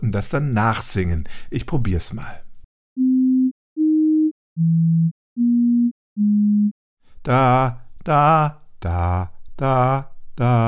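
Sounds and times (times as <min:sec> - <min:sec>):
speech: 0:00.0 - 0:02.4, 0:04.6 - 0:05.2, 0:07.2 - 0:10.6
random computer-generated pure electronic tones: 0:03.0 - 0:06.7.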